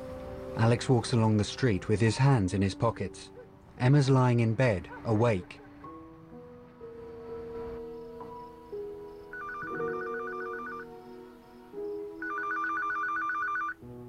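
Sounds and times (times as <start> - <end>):
soft sustained musical background: 0.0 - 14.0
speech: 0.6 - 5.6
telephone ringing in trilling bursts: 9.3 - 10.9, 12.2 - 13.8.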